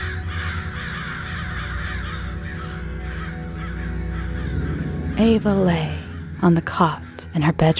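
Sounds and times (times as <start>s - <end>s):
flock of crows cawing: 0.0s - 7.2s
speech: 5.2s - 7.7s.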